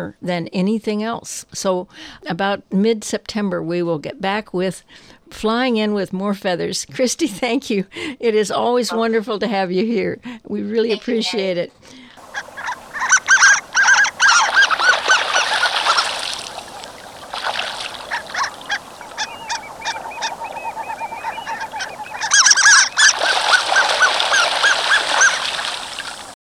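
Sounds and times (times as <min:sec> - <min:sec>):
speech: 0:00.0 - 0:12.5
harlequin ducks calling: 0:10.9 - 0:26.4.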